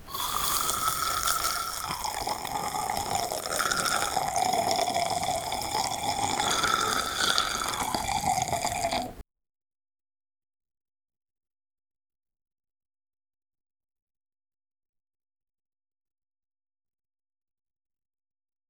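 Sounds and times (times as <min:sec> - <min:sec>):
mouth buttering sound: 0:00.0 - 0:09.2.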